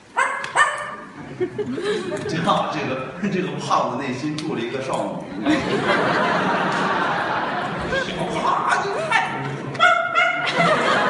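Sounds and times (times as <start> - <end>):
laughter: 1.2 - 2.6, 5.3 - 11.0
speech: 1.4 - 7.1
performer in a comedic crosstalk act imitating a dog barking: 8.9 - 10.5.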